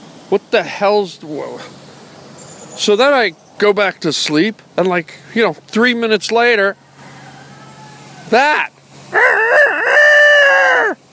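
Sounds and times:
speech: 0.3 - 1.8, 2.8 - 6.8, 8.3 - 9.3
rooster crowing: 6.6 - 8.5, 9.1 - 11.0.

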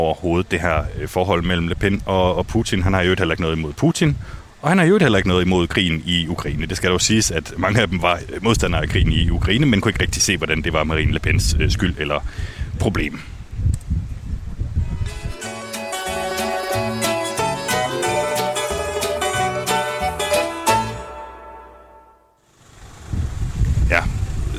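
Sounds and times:
speech: 0.0 - 13.8
strong mistral wind buffeting the microphone: 0.5 - 3.2, 4.1 - 4.6, 6.1 - 15.4, 22.9 - 24.5
tonal music: 15.1 - 22.4.

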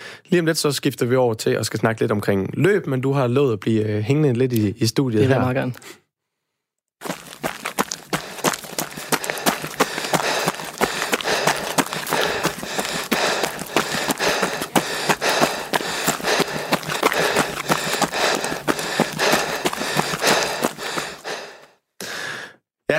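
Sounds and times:
speech: 0.3 - 6.0
running footsteps: 7.0 - 21.7
heavy panting and gasping breaths: 7.1 - 22.6.

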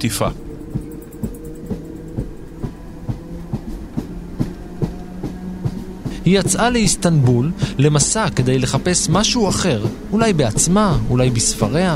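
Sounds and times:
speech: 0.0 - 0.4, 6.3 - 11.9
train wheels clattering over rail joints: 0.0 - 11.9.

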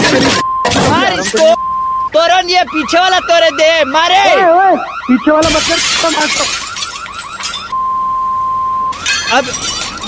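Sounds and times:
car window glass being smashed: 0.0 - 1.6, 5.4 - 7.7, 8.9 - 10.0
steady electronic beep tone: 0.0 - 4.1, 6.9 - 9.1
speech: 1.3 - 6.6, 9.3 - 10.0.

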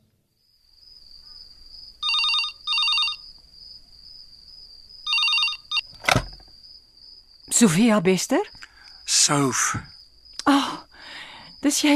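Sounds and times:
telephone ringing at home in the evening: 2.0 - 3.2, 5.1 - 5.9
sharp clunk: 5.9 - 6.6
speech: 7.6 - 8.6, 9.2 - 9.9, 11.6 - 11.9.

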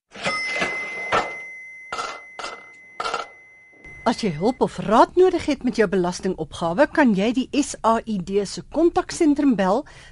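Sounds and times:
cash register ringing bright bell: 0.1 - 4.8
speech: 4.0 - 10.1.

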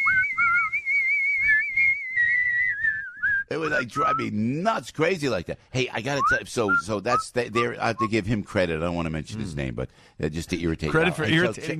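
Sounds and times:
vibrato whistle: 0.0 - 4.3
speech: 3.7 - 11.7.

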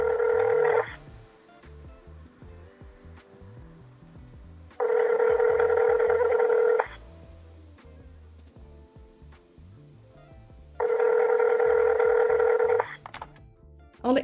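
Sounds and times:
telephone ringback tone through the earpiece: 0.0 - 1.1, 4.8 - 7.1, 10.8 - 13.0.

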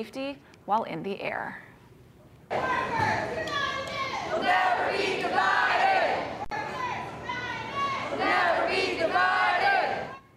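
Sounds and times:
speech: 0.0 - 1.7, 2.5 - 3.5
crowd of flight attendants chanting and shouting at a rally at an airport: 2.5 - 10.3.

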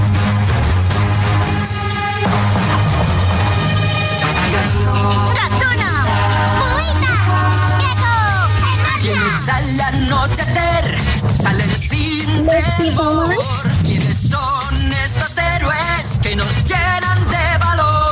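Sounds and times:
bright lead melody swooping and sliding: 0.0 - 14.0
band playing cartoon series theme song: 0.0 - 18.0.

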